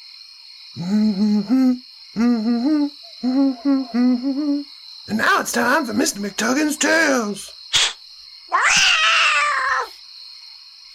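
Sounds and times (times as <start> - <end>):
speech: 0.7 - 2.3, 4.2 - 7.6
faint steady high-pitched hum: 0.8 - 5.2
cat meowing: 8.5 - 10.0.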